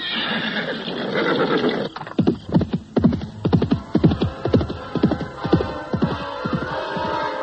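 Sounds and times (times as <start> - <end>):
horse neighing: 0.0 - 2.2
horse galloping as a rider sets out at night: 0.8 - 7.3.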